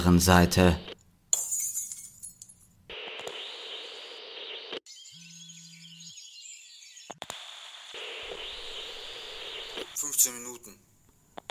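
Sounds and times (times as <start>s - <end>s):
speech: 0.0s - 0.9s
glass shattering: 1.3s - 2.7s
twittering chirps: 2.9s - 10.7s.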